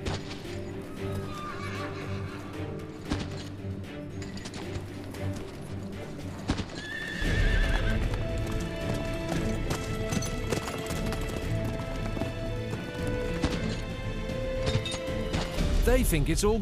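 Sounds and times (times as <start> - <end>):
horses' hooves clip-clopping at a steady trot: 0.0 - 15.6
horse letting out a high whinny: 0.8 - 3.0, 6.5 - 8.3
speech: 15.9 - 16.6.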